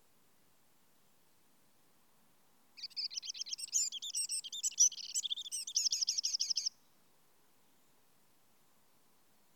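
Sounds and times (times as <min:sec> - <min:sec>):
Eurasian wren Troglodytes troglodytes singing jumbled high chatter and trills: 0:02.8 - 0:06.7.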